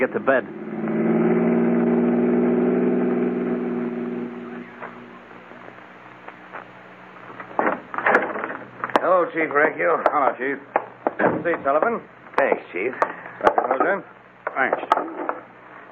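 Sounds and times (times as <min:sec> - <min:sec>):
speech: 0:00.0 - 0:01.2, 0:09.3 - 0:15.3
car engine droning while driving: 0:00.0 - 0:15.9
sharp clicks and knocks: 0:06.2 - 0:09.1, 0:10.0 - 0:15.5.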